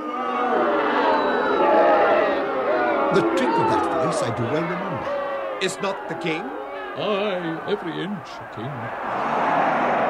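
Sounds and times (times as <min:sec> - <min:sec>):
large crowd of supporters booing: 0:00.0 - 0:10.0
speech: 0:03.1 - 0:10.0.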